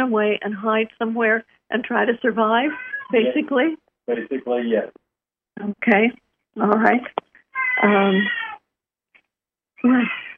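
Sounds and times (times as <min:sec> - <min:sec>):
speech: 0:00.0 - 0:05.0, 0:05.6 - 0:07.2, 0:07.8 - 0:08.5, 0:09.8 - 0:10.3
cat meowing: 0:02.7 - 0:03.4, 0:07.6 - 0:08.6.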